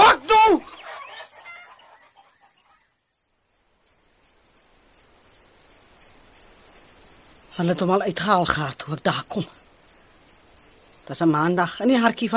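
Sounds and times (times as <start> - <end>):
crickets chirping: 0.0 - 12.3
chickens clucking and squawking: 0.6 - 3.0
speech: 7.6 - 9.6, 11.1 - 12.3.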